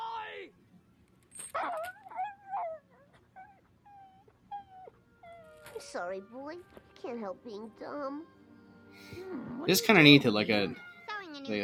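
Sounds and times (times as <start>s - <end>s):
dog whimpering: 1.6s - 6.0s
speech: 5.8s - 8.4s, 9.1s - 11.6s.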